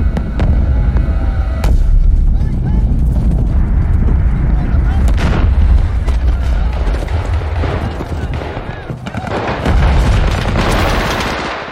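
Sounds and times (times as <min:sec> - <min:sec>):
dense low battle rumble: 0:00.0 - 0:10.9
booming explosions of a military attack on South Vietnamese cities: 0:00.0 - 0:11.6
bursts of gunfire in a military attack: 0:05.1 - 0:11.6.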